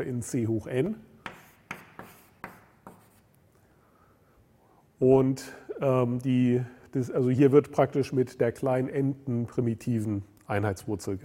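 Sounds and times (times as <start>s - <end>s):
speech: 0.0s - 1.1s, 5.0s - 11.2s
writing an index on a board during a mathematics lecture: 1.2s - 3.4s.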